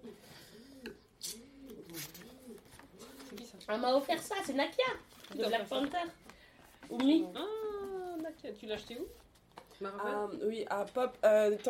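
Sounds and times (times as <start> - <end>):
person imitating pigeon cooing: 0.0 - 3.4
faint noise: 0.0 - 11.6
speech: 3.7 - 6.2, 6.9 - 7.5, 8.4 - 9.2, 9.8 - 11.6.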